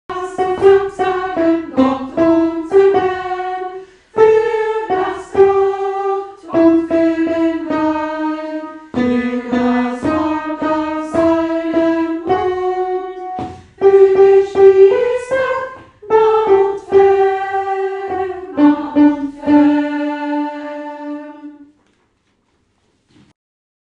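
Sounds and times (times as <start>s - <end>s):
alto voice singing a hymn of thanks: 0.1s - 21.7s.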